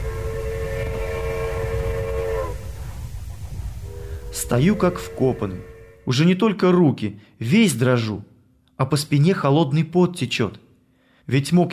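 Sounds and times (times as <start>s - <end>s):
steam locomotive whistle blowing a layered chord: 0.0s - 2.7s, 3.8s - 6.1s
speech: 4.4s - 10.6s, 11.3s - 11.7s.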